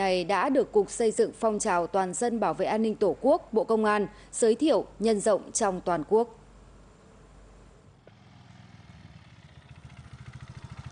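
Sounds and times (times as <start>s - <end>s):
speech: 0.0s - 6.4s
motorcycle engine with loud modified exhaust idling and revving: 8.0s - 10.9s.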